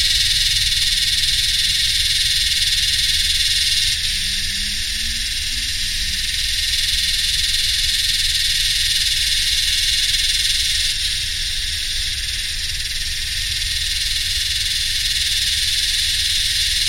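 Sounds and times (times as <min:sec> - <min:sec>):
Yellowbelly cicada chorus singing in the heat: 0:00.0 - 0:16.8
low hum of machines: 0:04.0 - 0:07.1.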